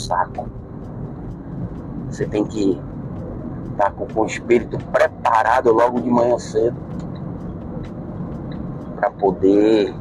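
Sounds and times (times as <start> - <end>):
speech: 0.0 - 0.6, 2.1 - 2.9, 3.7 - 7.0, 9.0 - 9.9
car driving on a busy city avenue at about 70 km/h: 0.0 - 9.9.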